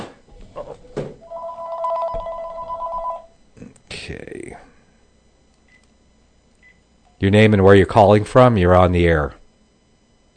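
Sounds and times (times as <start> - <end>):
telephone ringing with electronic trill: 1.2 - 3.3
speech: 4.0 - 4.7, 7.2 - 9.4.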